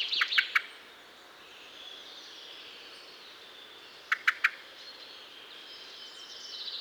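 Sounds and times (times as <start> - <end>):
Turdus merula common blackbird clicking calls: 0.2 - 0.7, 4.1 - 4.6.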